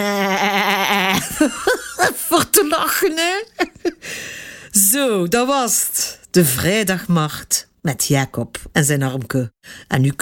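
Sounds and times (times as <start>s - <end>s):
person imitating sheep bleat: 0.0s - 1.3s
person laughing: 0.0s - 4.2s
speech: 1.4s - 4.2s, 4.8s - 10.2s.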